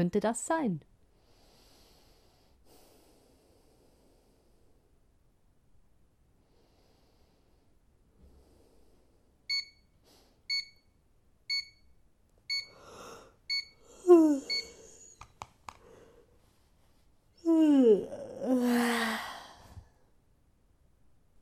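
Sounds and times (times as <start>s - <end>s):
speech: 0.0s - 0.9s
alarm clock beeping: 9.5s - 9.9s, 10.5s - 10.9s, 11.5s - 11.9s, 12.5s - 12.8s, 13.5s - 13.8s, 14.5s - 14.8s
person gasping: 12.7s - 15.2s, 17.5s - 19.9s
long drawn-out yawning groan: 17.4s - 19.2s.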